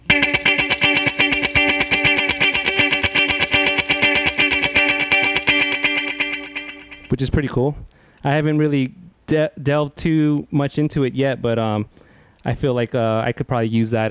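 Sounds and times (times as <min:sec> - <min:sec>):
electric guitar through tape-style echo, slightly distorted: 0:00.0 - 0:07.2
speech: 0:07.2 - 0:14.0.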